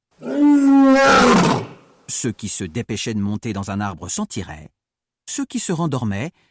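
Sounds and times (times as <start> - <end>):
lion roaring: 0.2 - 1.9
speech: 2.2 - 6.4.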